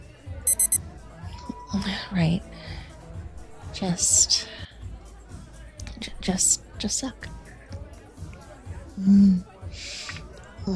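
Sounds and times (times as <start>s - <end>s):
faint low murmur of noise: 0.0s - 10.7s
kitchen timer beeping: 0.5s - 0.8s
speech: 1.7s - 2.8s, 3.8s - 4.6s, 6.3s - 7.3s, 9.0s - 10.0s.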